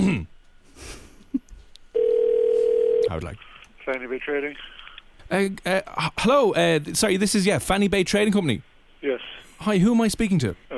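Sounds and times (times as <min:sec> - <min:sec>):
phone line ringback tone on an outgoing call to a trading company: 0:02.0 - 0:03.1
faint phone line noise: 0:02.0 - 0:03.3
speech: 0:03.1 - 0:04.7, 0:05.3 - 0:10.7.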